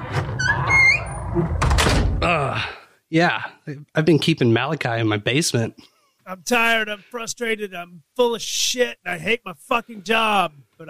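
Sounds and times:
huge heavy cellar door creaking open: 0.0 - 2.3
speech: 1.4 - 1.6, 3.1 - 10.8.

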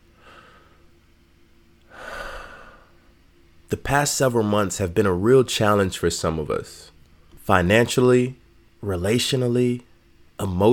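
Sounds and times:
person breathing deeply: 0.1 - 0.9, 1.9 - 3.1
speech: 3.7 - 6.9, 7.5 - 10.7.

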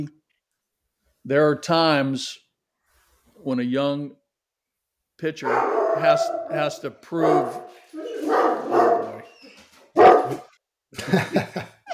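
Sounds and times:
speech: 1.2 - 2.4, 3.4 - 4.2, 5.2 - 7.8, 10.9 - 11.7
dog barking: 5.4 - 9.4, 10.0 - 10.5
laughter: 11.0 - 11.9.

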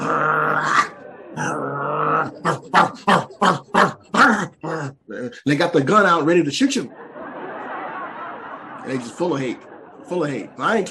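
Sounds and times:
laughter: 0.0 - 4.8, 6.7 - 10.8
man's voice imitating hyenas barking: 0.0 - 5.4
speech: 5.4 - 7.1, 8.9 - 10.8.

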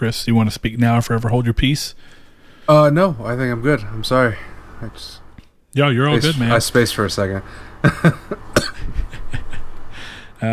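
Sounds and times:
speech: 0.0 - 5.2, 5.8 - 9.1, 10.4 - 10.5
laughter: 6.2 - 10.0
person coughing: 7.9 - 9.0.

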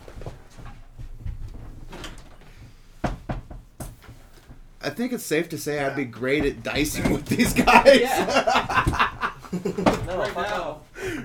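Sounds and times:
chair moved back scraping across the floor: 0.0 - 4.8, 5.8 - 11.2
speech: 4.8 - 11.2
laughter: 5.7 - 11.2
sharp knocks: 6.4 - 10.5.

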